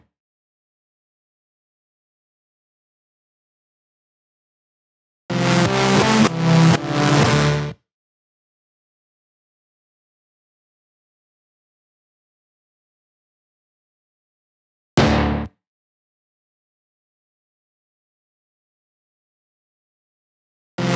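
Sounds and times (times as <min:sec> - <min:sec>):
synth stab: 0:05.3 - 0:07.7, 0:15.0 - 0:15.5, 0:20.8 - 0:20.9.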